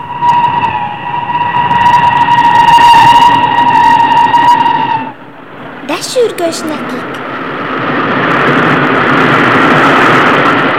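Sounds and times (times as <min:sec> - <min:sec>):
sustained piercing horn-like tone: 0:00.0 - 0:05.6
train rumbling past: 0:00.0 - 0:10.7
speech: 0:06.3 - 0:07.2.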